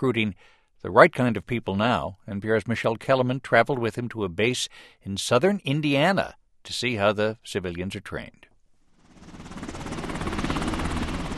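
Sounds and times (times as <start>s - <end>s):
speech: 0.0s - 8.5s
helicopter engine whine: 8.9s - 11.3s
helicopter rotor chopping: 8.9s - 11.3s.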